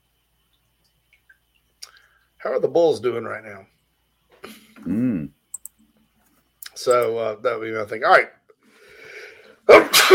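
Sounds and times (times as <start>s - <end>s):
speech: 2.4s - 3.8s, 4.8s - 5.4s, 6.8s - 8.4s
sneeze: 9.7s - 10.1s.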